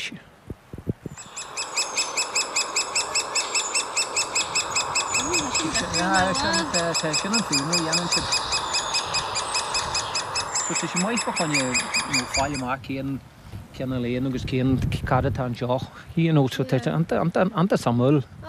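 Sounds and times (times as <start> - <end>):
speech: 0.1 - 0.3, 6.0 - 8.5, 10.7 - 18.4
great spotted woodpecker sharp high calls: 1.1 - 12.8.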